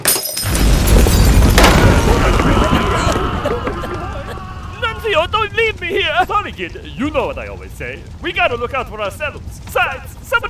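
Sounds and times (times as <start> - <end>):
stove kicked over inside an inn: 0.0 - 4.4
inn bursting into flames: 0.4 - 10.4
laughter: 1.8 - 6.5
speech: 6.5 - 10.4.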